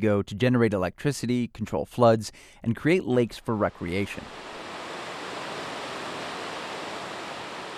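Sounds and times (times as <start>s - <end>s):
speech: 0.0s - 4.6s
water pouring over a river dam: 3.8s - 7.7s.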